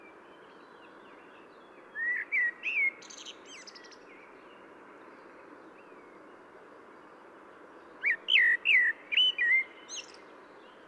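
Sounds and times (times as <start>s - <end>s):
steady background hiss: 0.0s - 10.8s
common blackbird Turdus merula singing fluty slurred whistles: 1.9s - 4.0s, 8.0s - 10.2s.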